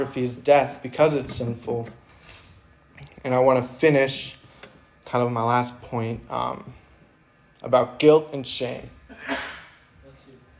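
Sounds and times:
speech: 0:00.0 - 0:02.0, 0:03.0 - 0:04.4, 0:05.1 - 0:06.8, 0:07.6 - 0:09.5
single sharp loud sneeze: 0:09.1 - 0:09.8.

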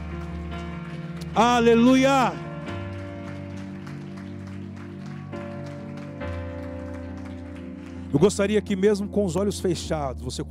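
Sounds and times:
audience applauding: 0:00.0 - 0:08.6
sustained keyboard or organ chords: 0:00.0 - 0:10.4
speech: 0:01.4 - 0:02.4, 0:08.1 - 0:10.4.

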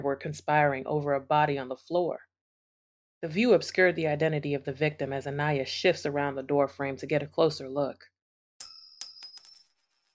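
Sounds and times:
speech: 0:00.0 - 0:02.3, 0:03.2 - 0:08.1
woman's metal bracelet clattering onto a hard floor: 0:08.6 - 0:10.0.

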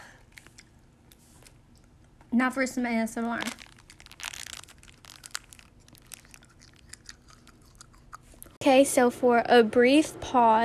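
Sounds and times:
crunching and chewing of ice cream: 0:00.1 - 0:02.1, 0:03.4 - 0:08.6
speech: 0:02.3 - 0:03.6, 0:08.6 - 0:10.6.

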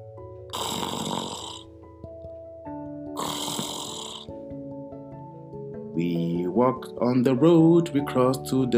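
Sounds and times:
man snoring: 0:00.5 - 0:01.7, 0:03.2 - 0:04.4
speech: 0:06.0 - 0:08.7.

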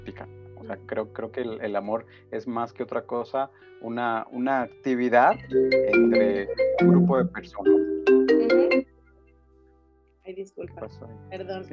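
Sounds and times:
speech: 0:00.1 - 0:08.8, 0:10.3 - 0:11.7
cell phone ringtone playing four bright tonal notes: 0:05.4 - 0:08.9.

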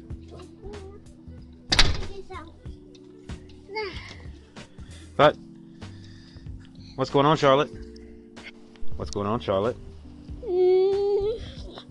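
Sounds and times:
child's voice: 0:00.3 - 0:01.2, 0:01.9 - 0:02.8, 0:03.6 - 0:04.3, 0:10.4 - 0:11.8
door shutting with a loud thud: 0:01.7 - 0:02.3
speech: 0:05.2 - 0:05.4, 0:07.0 - 0:07.8, 0:09.0 - 0:09.8.

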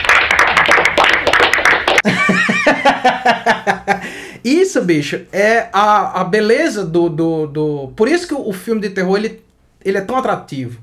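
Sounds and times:
inserted applause sound effect, many hands clapping: 0:00.0 - 0:02.1
laughter: 0:02.0 - 0:04.1
speech: 0:03.2 - 0:03.7, 0:04.4 - 0:10.8.

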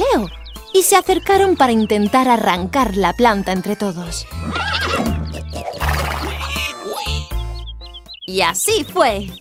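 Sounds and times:
speech: 0:00.2 - 0:05.7, 0:08.3 - 0:09.3
horse letting out a loud quavering whinny: 0:04.3 - 0:07.3.

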